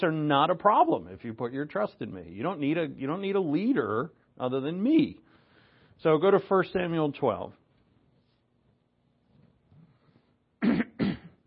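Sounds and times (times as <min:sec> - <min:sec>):
speech: 0:00.0 - 0:05.2, 0:06.0 - 0:07.6
throat clearing: 0:10.6 - 0:11.4.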